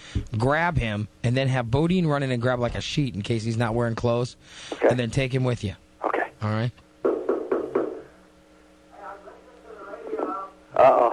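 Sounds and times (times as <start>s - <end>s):
speech: 0.1s - 5.8s, 6.4s - 6.8s
heavy knocks on a door: 7.0s - 8.1s
voices talking faintly: 8.9s - 11.1s.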